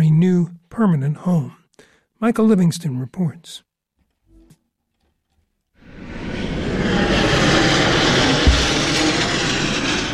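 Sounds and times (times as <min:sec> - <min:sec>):
speech: 0:00.2 - 0:01.6, 0:02.2 - 0:03.7
airplane flying low overhead on landing approach to the Portland Jetport in Maine: 0:05.8 - 0:10.1.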